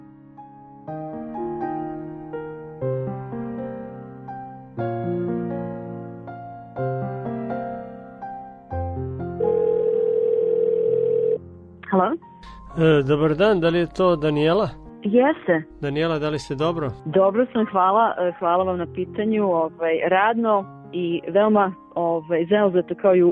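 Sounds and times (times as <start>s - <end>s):
music: 0.0s - 23.3s
telephone tone while placing a call: 9.4s - 11.4s
speech: 12.8s - 23.3s.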